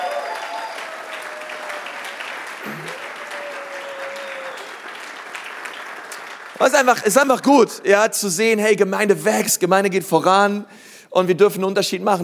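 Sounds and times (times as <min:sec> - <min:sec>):
sustained applause from a sizable church audience: 0:00.0 - 0:07.1
speech: 0:06.6 - 0:12.2.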